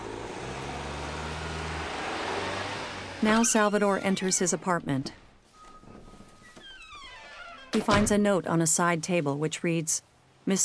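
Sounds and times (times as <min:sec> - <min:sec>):
car engine droning while driving uphill: 0:00.0 - 0:04.7
road noise: 0:00.0 - 0:05.5
speech: 0:03.2 - 0:05.2, 0:07.8 - 0:10.6.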